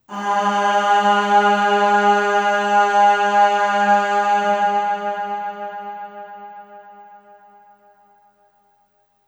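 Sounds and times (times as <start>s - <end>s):
long aah vocal on G#2 with long reverb: 0.1s - 7.1s.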